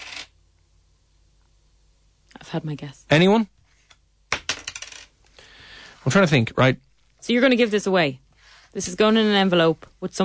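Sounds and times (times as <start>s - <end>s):
Euro coins dropping and rattling: 0.0s - 0.4s, 4.3s - 5.1s
speech: 2.4s - 3.6s, 6.0s - 10.2s.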